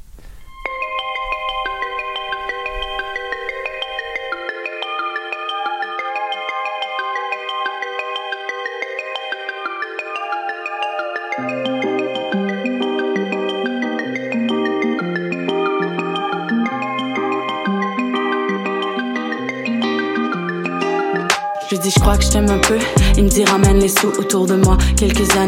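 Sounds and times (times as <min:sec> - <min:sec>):
bright chiming synth melody of a song intro: 0:00.5 - 0:25.4
speech: 0:21.8 - 0:25.4
pulsing bass line: 0:22.0 - 0:23.9, 0:24.6 - 0:25.4.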